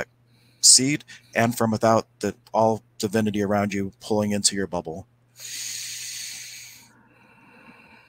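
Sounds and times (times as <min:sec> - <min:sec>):
speech: 0:00.0 - 0:05.7
deep breath during a guided breathing exercise: 0:05.4 - 0:08.0.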